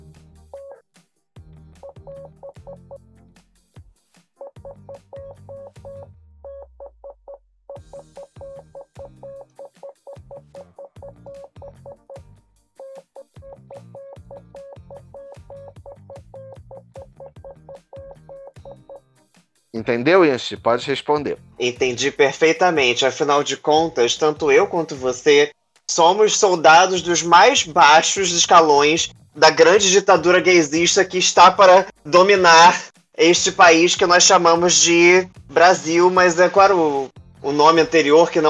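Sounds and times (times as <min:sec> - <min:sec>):
loud thumping music: 0:00.0 - 0:38.4
high-pitched Morse code beeps: 0:01.8 - 0:03.0, 0:04.6 - 0:19.0
speech: 0:19.8 - 0:38.4.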